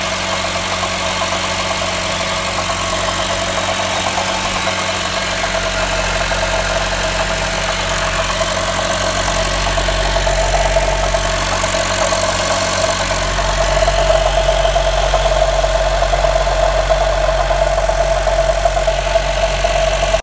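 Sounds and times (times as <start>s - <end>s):
weird gurgling engine noise of second generation car: 0.0s - 20.2s.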